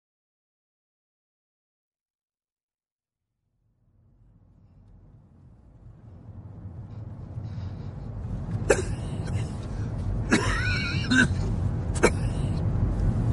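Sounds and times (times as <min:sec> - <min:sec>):
steady low engine rumble of a moving car: 0:03.3 - 0:13.3
elderly man coughing inside a moving car: 0:08.6 - 0:09.6, 0:10.2 - 0:12.6.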